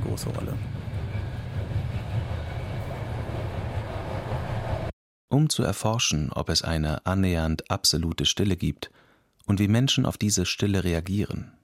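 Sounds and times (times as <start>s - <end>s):
train running on rails: 0.0s - 4.9s
speech: 0.2s - 0.8s, 5.4s - 11.6s.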